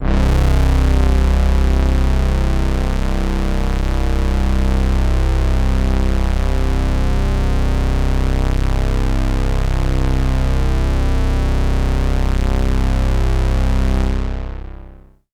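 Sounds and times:
low synth brass lead one-shot note: 0:00.0 - 0:15.1.

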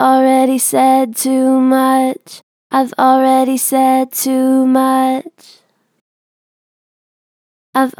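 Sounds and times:
person singing with gentle natural vibrato: 0:00.0 - 0:05.6.

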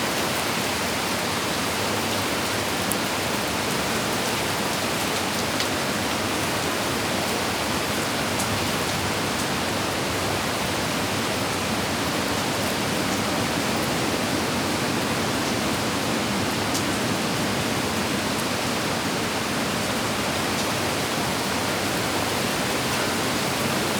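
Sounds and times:
heavy rain: 0:00.0 - 0:23.9.

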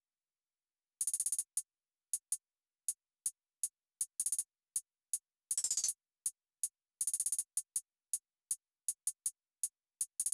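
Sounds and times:
hi-hat drum loop: 0:01.0 - 0:02.3, 0:03.6 - 0:10.3.

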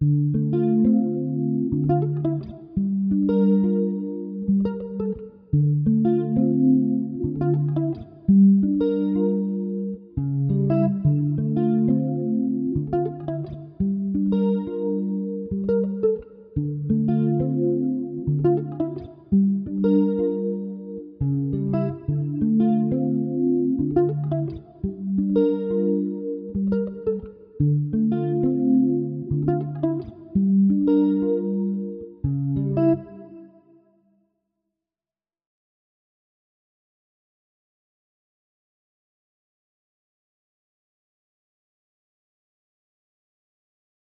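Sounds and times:
D minor Afrobeats guitar chord melody loop: 0:00.0 - 0:33.7.

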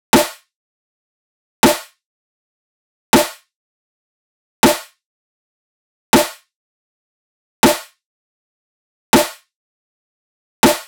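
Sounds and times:
future bass drum loop with snare: 0:00.2 - 0:00.4, 0:01.6 - 0:01.9, 0:03.2 - 0:03.4, 0:04.6 - 0:04.9, 0:06.2 - 0:06.4, 0:07.6 - 0:07.9, 0:09.2 - 0:09.4, 0:10.6 - 0:10.8.

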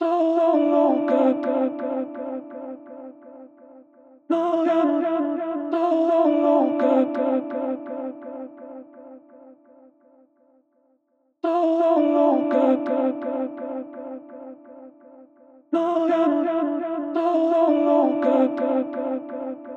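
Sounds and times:
vocal melody loop at 168 BPM in D minor: 0:00.0 - 0:03.3, 0:04.3 - 0:08.8, 0:11.4 - 0:14.7, 0:15.8 - 0:19.7.

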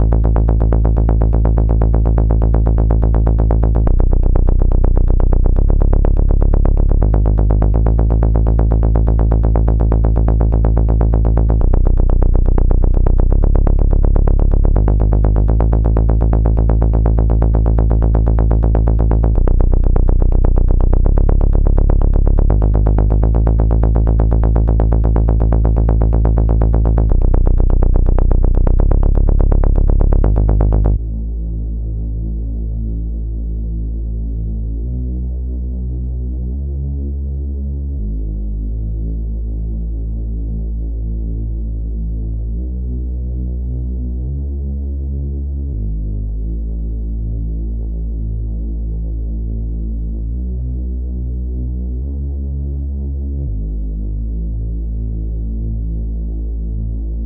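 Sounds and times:
C sharp minor bass: 0:00.0 - 0:57.2.

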